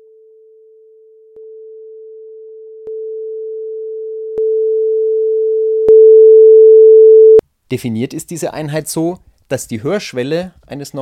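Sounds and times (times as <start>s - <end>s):
steady pure sine tone rising in loudness in 10 decibel steps: 0.0s - 7.4s
speech: 7.7s - 10.9s.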